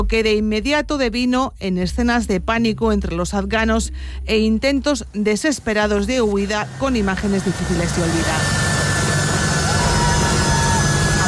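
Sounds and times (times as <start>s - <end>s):
speech: 0.0s - 8.6s
jet aircraft engine roaring on takeoff: 6.4s - 11.2s.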